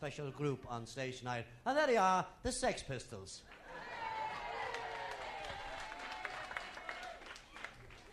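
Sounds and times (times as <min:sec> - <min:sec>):
speech: 0:00.0 - 0:03.9
audience applause: 0:03.5 - 0:08.1.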